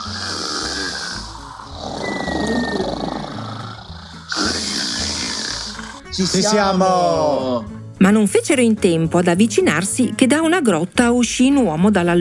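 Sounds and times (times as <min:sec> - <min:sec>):
loud deep snoring: 0:00.0 - 0:06.6
low rumbling musical bed: 0:00.0 - 0:12.1
speech: 0:06.2 - 0:12.1.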